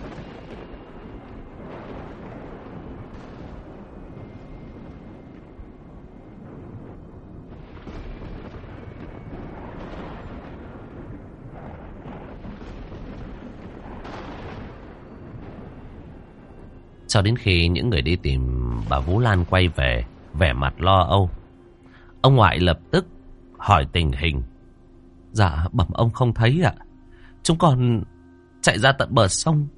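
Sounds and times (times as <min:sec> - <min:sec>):
dry thunder rumbling outside without rain: 0:00.0 - 0:29.7
speech: 0:17.1 - 0:21.4, 0:22.2 - 0:24.5, 0:25.3 - 0:26.8, 0:27.4 - 0:29.7.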